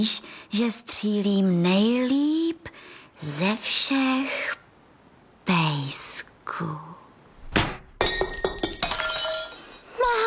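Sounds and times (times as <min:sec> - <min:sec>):
speech: 0:00.0 - 0:04.6, 0:05.5 - 0:06.9
plaster cat figurine shattering with a loud crash: 0:07.6 - 0:10.0
plaster shards clattering and tinkling down: 0:08.0 - 0:10.0.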